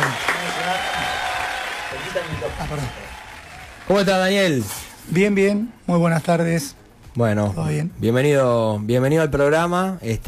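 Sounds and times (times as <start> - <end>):
studio audience applause: 0.0 - 4.6
speech: 2.1 - 3.1, 3.9 - 10.2.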